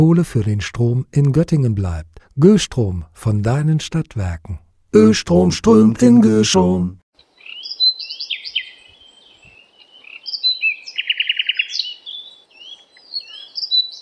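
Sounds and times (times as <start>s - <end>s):
speech: 0.0s - 7.0s
birds chirping and trilling along hiking trails: 7.2s - 14.0s.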